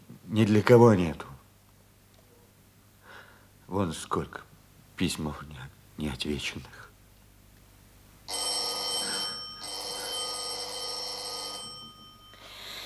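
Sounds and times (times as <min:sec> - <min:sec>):
speech: 0:00.3 - 0:01.3, 0:03.7 - 0:06.8
electric doorbell ringing: 0:08.3 - 0:12.7.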